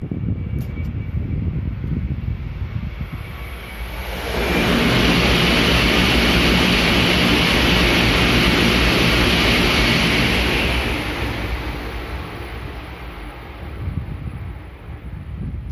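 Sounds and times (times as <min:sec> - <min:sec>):
Shinkansen passing through JR Kakegawa Station: 0:00.0 - 0:15.6.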